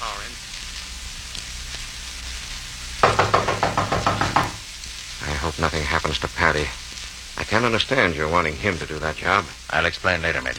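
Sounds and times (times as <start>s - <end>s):
knocking on a wooden door: 3.0s - 4.7s
speech: 5.8s - 6.8s, 7.4s - 10.5s.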